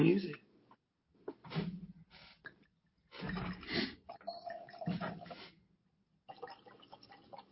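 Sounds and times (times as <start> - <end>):
speech: 0.0 - 0.4
wine glugging from a bottle into a glass: 3.2 - 5.4, 6.3 - 7.5.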